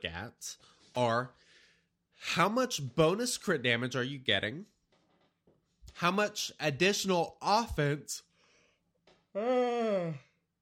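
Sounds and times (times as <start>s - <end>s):
speech: 0.0s - 1.4s, 2.2s - 4.7s, 6.0s - 8.3s, 9.3s - 10.3s
long drawn-out voiced yawn falling in pitch: 9.4s - 10.4s.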